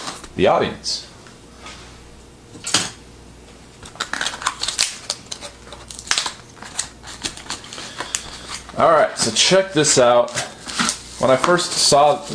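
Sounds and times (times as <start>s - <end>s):
speech: 0.4s - 1.1s, 8.8s - 10.5s, 11.2s - 12.3s
budget product package being torn open: 3.8s - 8.8s.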